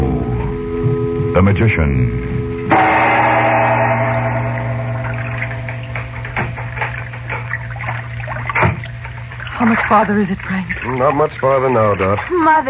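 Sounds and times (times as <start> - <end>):
low steady hum: 0.0 - 12.6
speech: 1.4 - 2.3, 9.6 - 12.6
water lapping and splashing around a sailboat on the Nile: 3.7 - 12.6.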